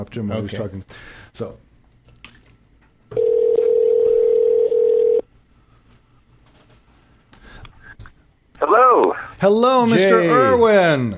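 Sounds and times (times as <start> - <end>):
speech: 0.0 - 1.7, 8.8 - 11.1
telephone ringback tone on an outgoing call: 3.2 - 5.2.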